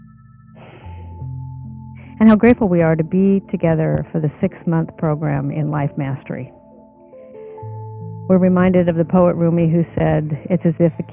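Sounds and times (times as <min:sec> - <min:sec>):
deep breath drawn in slowly: 0:00.6 - 0:01.3, 0:07.0 - 0:07.9
speech: 0:02.2 - 0:06.6, 0:08.3 - 0:11.1.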